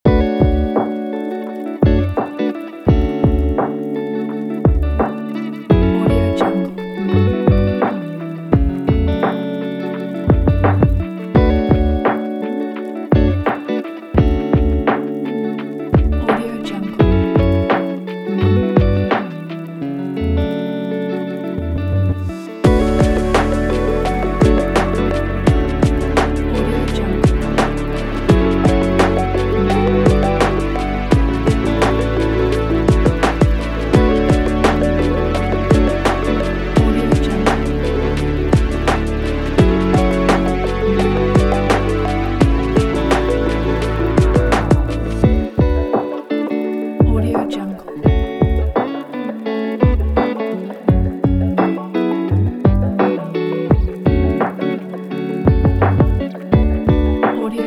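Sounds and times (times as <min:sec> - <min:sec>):
chill hip hop pop vlog beat: 0:00.0 - 0:57.6.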